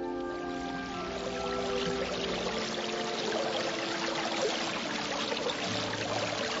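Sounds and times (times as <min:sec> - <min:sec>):
mountain spring water running and splashing over rock: 0:00.0 - 0:06.5.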